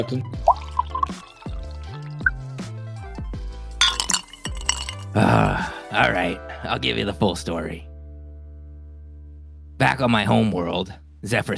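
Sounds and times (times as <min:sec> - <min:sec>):
speech: 0:00.0 - 0:01.2, 0:05.2 - 0:07.9, 0:09.8 - 0:11.5
drink pouring into a glass with gurgling rising tones: 0:00.4 - 0:02.4, 0:03.8 - 0:05.2
bright glass clinks: 0:03.8 - 0:05.2.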